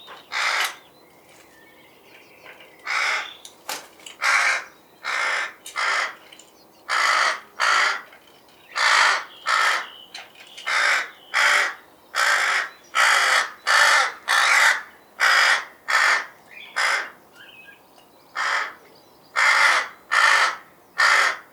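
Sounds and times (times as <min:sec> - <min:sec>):
rook giving harsh grating caws: 0:00.3 - 0:00.8, 0:02.8 - 0:03.4, 0:04.2 - 0:06.2, 0:06.9 - 0:08.2, 0:08.8 - 0:10.0, 0:10.6 - 0:17.2, 0:18.4 - 0:18.8, 0:19.4 - 0:21.5.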